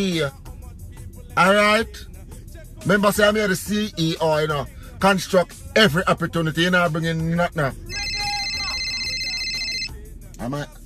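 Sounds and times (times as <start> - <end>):
speech: 0.0 - 0.5, 1.4 - 2.1, 2.8 - 8.0, 10.4 - 10.8
phone ringing with a high electronic trill: 7.9 - 10.0.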